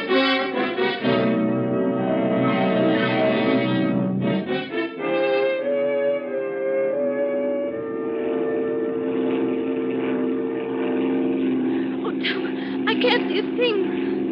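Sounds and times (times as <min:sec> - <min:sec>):
propeller airplane engine droning in flight in rough weather: 0:00.0 - 0:14.3
voices: 0:11.8 - 0:14.3.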